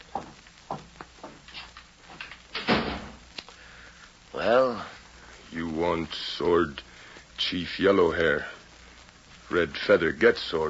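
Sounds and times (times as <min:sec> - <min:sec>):
door swinging shut with a solid thud: 0:02.5 - 0:03.2
speech: 0:06.0 - 0:08.6, 0:09.5 - 0:10.6.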